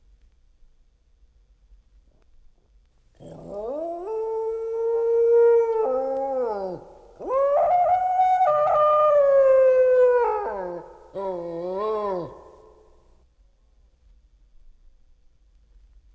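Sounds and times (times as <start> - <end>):
dog howling: 3.2 - 12.9.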